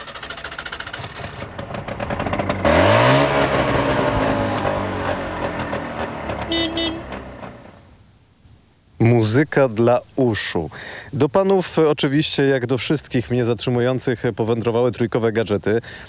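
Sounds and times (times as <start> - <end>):
car engine idling and revved hard: 2.0 - 7.9
brief higher tone: 6.5 - 7.2
speech: 9.2 - 16.0.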